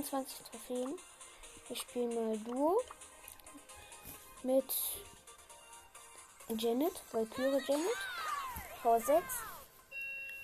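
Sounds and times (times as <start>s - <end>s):
speech: 0.0s - 1.1s, 1.7s - 3.1s, 4.4s - 5.2s, 6.5s - 8.1s, 8.8s - 9.5s
faint electronic doorbell chime with falling tone and sustained beep: 9.9s - 10.4s.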